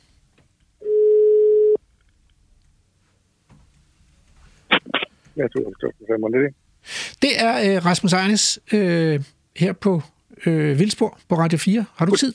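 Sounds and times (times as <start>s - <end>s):
telephone ringback tone while placing a call: 0.8s - 1.8s
person answering and speaking on telephone: 4.7s - 6.5s
speech: 5.4s - 12.3s.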